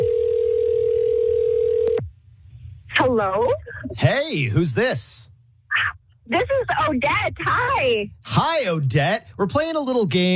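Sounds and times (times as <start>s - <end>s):
telephone ringback tone on an outgoing call: 0.0s - 1.9s
speech: 3.2s - 5.3s, 6.3s - 10.3s.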